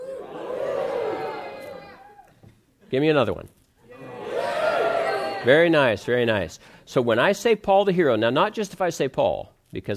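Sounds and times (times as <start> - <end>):
crowd cheering and shouting hooray: 0.0 - 2.3, 3.9 - 6.1
speech: 2.9 - 3.6, 5.4 - 9.9.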